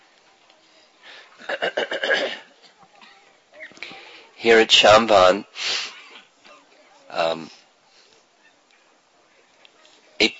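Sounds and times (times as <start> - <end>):
speech: 4.4 - 5.8
nilgai antelope calling: 8.4 - 9.5.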